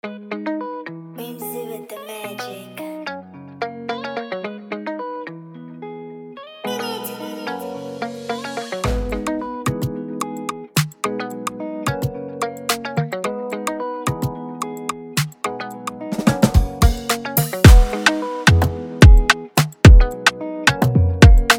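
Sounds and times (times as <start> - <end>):
Afrobeat instrumental music: 6.7 - 21.5.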